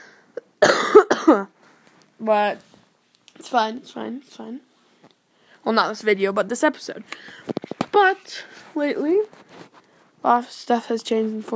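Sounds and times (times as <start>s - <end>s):
person coughing: 0.4s - 1.5s
speech: 1.3s - 1.6s, 2.2s - 2.7s, 3.4s - 4.7s, 5.6s - 9.4s, 10.2s - 11.5s.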